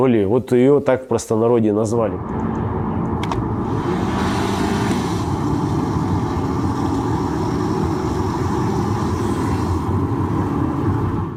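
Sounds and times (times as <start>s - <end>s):
speech: 0.0s - 2.6s
car engine running with a gritty rattle under the hood: 2.2s - 11.3s.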